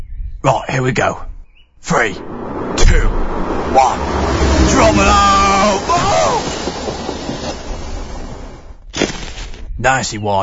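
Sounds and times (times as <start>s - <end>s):
speech: 0.4s - 3.1s, 3.7s - 6.1s, 9.8s - 10.4s
train passing under a bridge: 1.8s - 8.8s.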